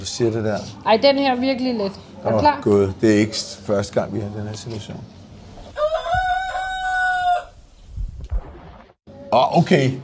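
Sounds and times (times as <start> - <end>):
speech: 0.0 - 5.2, 9.3 - 10.0
rooster crowing: 5.7 - 7.6.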